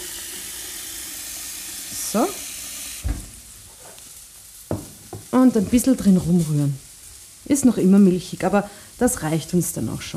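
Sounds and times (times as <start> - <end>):
tap water running into a bowl of rice: 0.0 - 3.4
speech: 2.1 - 2.4, 5.4 - 6.8, 7.5 - 10.1.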